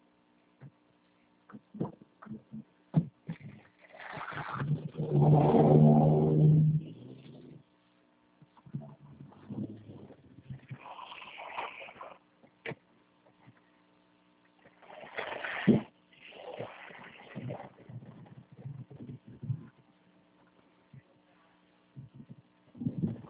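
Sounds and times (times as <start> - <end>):
car engine rumbling and revving while being driven: 4.6 - 7.6.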